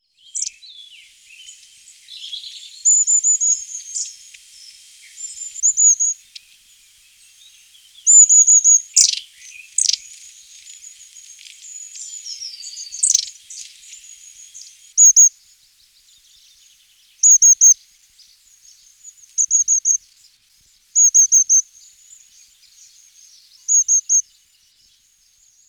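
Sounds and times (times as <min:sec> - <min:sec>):
long-tailed tit singing: 0:00.2 - 0:04.1, 0:05.2 - 0:06.5, 0:07.4 - 0:10.2, 0:11.6 - 0:15.3, 0:17.2 - 0:17.8, 0:18.7 - 0:20.0, 0:21.0 - 0:21.6, 0:22.7 - 0:24.2.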